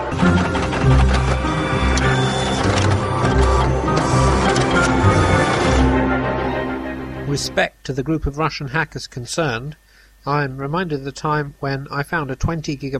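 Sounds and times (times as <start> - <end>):
printer whirring, grinding and clattering as it starts up: 0.1 - 6.1
speech: 0.2 - 0.6, 7.4 - 12.9.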